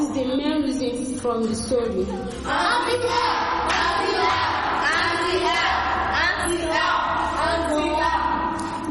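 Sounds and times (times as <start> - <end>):
speech: 0.2 - 7.9
group clapping: 2.3 - 8.8
voices cheering and shouting: 2.5 - 8.6.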